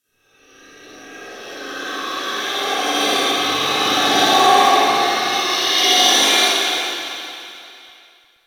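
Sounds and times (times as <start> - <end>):
icy distant robotics ambience: 1.1 - 6.6.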